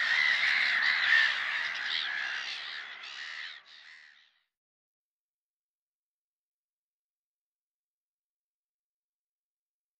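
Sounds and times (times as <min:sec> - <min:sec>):
black-headed gull calls: 0:00.0 - 0:04.4.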